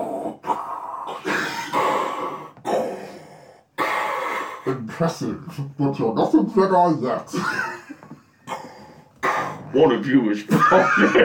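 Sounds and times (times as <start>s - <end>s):
person growling and roaring in imitation of a lion: 0.0s - 3.0s
speech: 4.7s - 7.8s, 9.8s - 11.2s
laughter: 7.3s - 8.2s, 10.5s - 11.2s.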